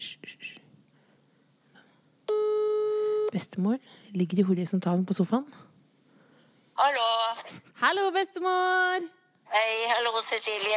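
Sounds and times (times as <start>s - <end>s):
electronic ringback tone from a phone on speaker: 2.3s - 3.3s
speech: 3.3s - 5.7s, 7.8s - 10.7s.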